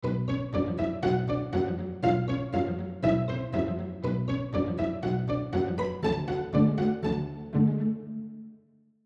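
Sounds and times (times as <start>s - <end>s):
pizzicato string ensemble: 0.0s - 8.5s.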